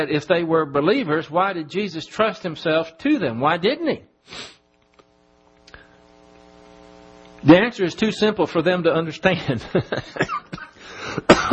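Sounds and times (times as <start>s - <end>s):
speech: 0.0s - 4.6s, 7.4s - 11.4s
laughter: 9.3s - 10.8s
harsh coughs: 10.2s - 11.5s.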